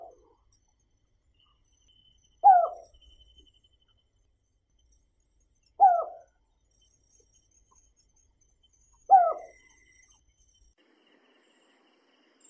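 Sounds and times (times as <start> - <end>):
Collared scops owl giving short soft downward-inflected hoots: 2.4 - 3.0, 5.8 - 6.3, 9.1 - 9.8.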